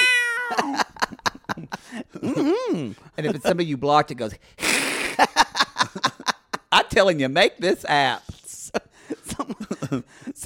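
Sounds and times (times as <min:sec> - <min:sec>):
person imitating a cat meowing and yowling: 0:00.0 - 0:00.7
laughter: 0:00.3 - 0:03.6, 0:04.8 - 0:06.7, 0:08.6 - 0:10.4
speech: 0:02.4 - 0:04.6, 0:06.9 - 0:08.4, 0:09.9 - 0:10.4.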